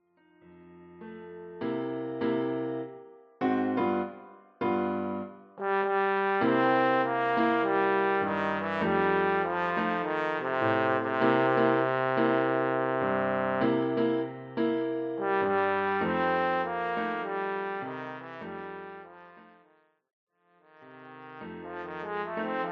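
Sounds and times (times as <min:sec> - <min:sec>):
piano accompaniment: 0:00.0 - 0:19.8, 0:20.7 - 0:22.6
trombone playing blues: 0:05.6 - 0:13.8, 0:15.2 - 0:19.6, 0:20.7 - 0:22.6.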